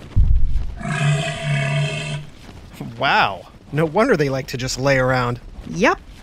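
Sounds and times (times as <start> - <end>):
male elephant seal roaring: 0.8 - 2.3
speech: 3.0 - 6.1.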